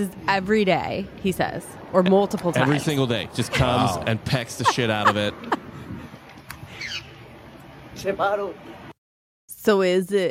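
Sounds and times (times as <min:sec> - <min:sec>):
speech: 0:00.0 - 0:05.6, 0:08.0 - 0:08.8, 0:09.6 - 0:10.3
noisy device playback background: 0:00.0 - 0:10.3
laughter: 0:02.7 - 0:06.1
magpie squawking in a video played from a device: 0:06.7 - 0:07.2.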